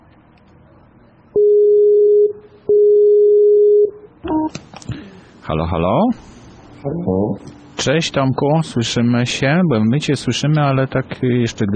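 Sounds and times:
telephone ringing tone beeps while placing a call: 1.4s - 4.5s
speech: 5.5s - 11.7s.

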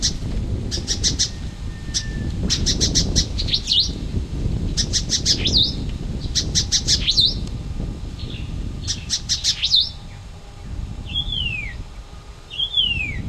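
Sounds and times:
white-eared monarch ticking and whistling calls: 0.0s - 4.0s, 4.6s - 7.5s, 8.2s - 10.2s, 11.0s - 11.8s, 12.4s - 13.2s
steady low rumble: 0.0s - 13.2s.

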